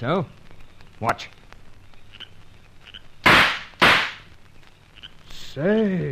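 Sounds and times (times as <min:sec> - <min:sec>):
speech: 0:00.0 - 0:00.4, 0:01.0 - 0:01.4, 0:05.6 - 0:06.0
gunshots from a pipe fired as a makeshift gun: 0:03.2 - 0:04.3.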